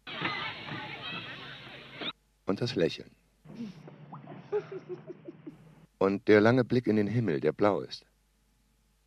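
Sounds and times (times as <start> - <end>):
children shrieking and squealing happily at a swimming pool: 0.0 - 2.2
speech: 2.5 - 3.2, 6.0 - 8.1
laughter: 4.3 - 5.8.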